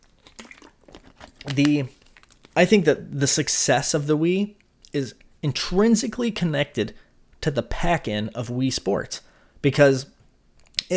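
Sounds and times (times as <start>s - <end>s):
slurping sips of water: 0.0s - 2.2s
speech: 1.5s - 2.0s, 2.6s - 10.1s.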